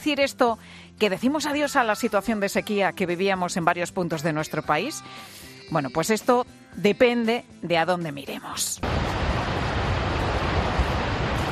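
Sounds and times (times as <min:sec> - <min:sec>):
speech: 0:00.0 - 0:09.2
reservoir dam releasing rushing water: 0:08.8 - 0:11.5.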